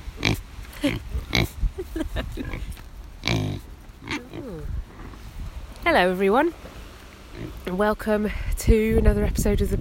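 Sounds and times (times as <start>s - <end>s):
pigs grunting and snorting on a farm: 0.2s - 1.6s, 2.4s - 5.2s
speech: 0.8s - 2.8s, 5.9s - 6.7s, 7.6s - 9.7s.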